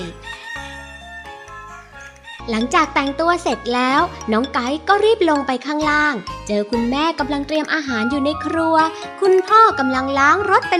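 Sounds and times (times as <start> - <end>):
rooster crowing: 0.0 - 2.6
speech: 2.4 - 10.7.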